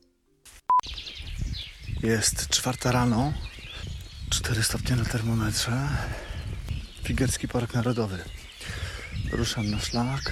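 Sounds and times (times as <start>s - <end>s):
birds singing at dawn: 0.8s - 10.3s
speech: 2.0s - 3.5s, 4.3s - 6.3s, 7.0s - 10.3s.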